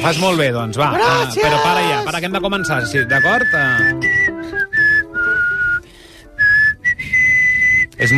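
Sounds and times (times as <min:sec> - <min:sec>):
speech: 0:00.0 - 0:04.3, 0:08.0 - 0:08.1
person whistling a tune: 0:02.5 - 0:08.1.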